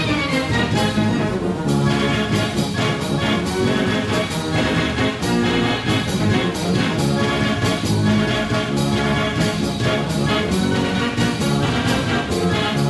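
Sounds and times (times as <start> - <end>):
loud fairground music with layered organ-like tones: 0.0 - 12.8
steady regular beat: 0.2 - 12.8.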